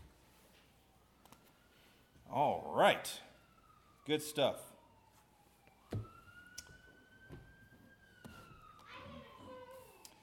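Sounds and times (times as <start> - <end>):
ambulance siren wailing as it rolls past: 0.1 - 10.2
speech: 2.3 - 3.3, 4.0 - 4.7.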